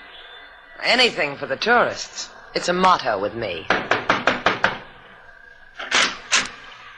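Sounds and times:
speech: 0:00.8 - 0:03.8
sharp knocks on a door: 0:03.7 - 0:04.9.

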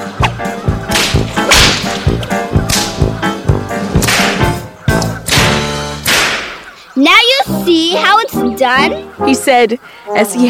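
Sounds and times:
dense musical backing: 0:00.0 - 0:10.4
whip cracking: 0:00.9 - 0:03.0, 0:04.0 - 0:06.7
speech: 0:08.7 - 0:10.4.

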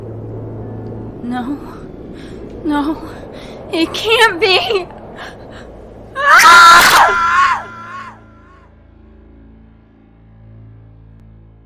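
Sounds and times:
speech: 0:01.3 - 0:05.4, 0:06.2 - 0:07.4
woman screaming in terror: 0:06.2 - 0:08.6.

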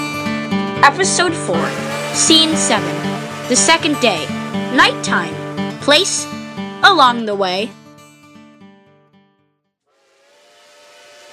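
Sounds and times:
speech: 0:00.8 - 0:07.8
steam locomotive whistle blowing: 0:01.6 - 0:06.8, 0:09.9 - 0:11.3.

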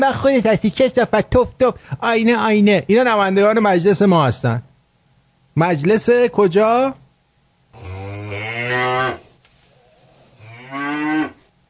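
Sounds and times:
speech: 0:00.0 - 0:04.7, 0:05.6 - 0:07.0
cow mooing: 0:07.7 - 0:09.4, 0:10.1 - 0:11.4.

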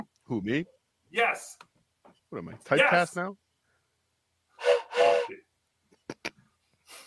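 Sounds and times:
speech: 0:00.3 - 0:01.7, 0:02.3 - 0:03.4
breathy reedy blasts on a toy train whistle: 0:04.6 - 0:05.4.

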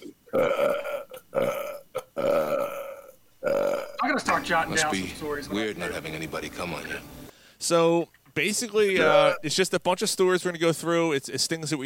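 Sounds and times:
loud croaking burps: 0:00.0 - 0:04.1, 0:09.0 - 0:09.5
speech: 0:00.3 - 0:00.7, 0:04.4 - 0:11.8.

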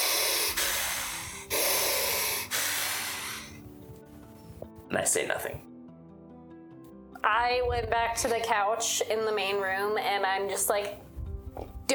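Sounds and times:
person imitating heavy breathing: 0:00.0 - 0:03.6
speech: 0:04.9 - 0:05.7, 0:07.4 - 0:11.0.

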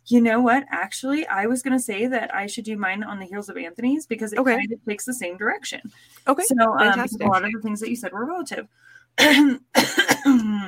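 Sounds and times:
speech: 0:00.1 - 0:10.6
person coughing with throat-clearing rasp: 0:09.2 - 0:10.6.

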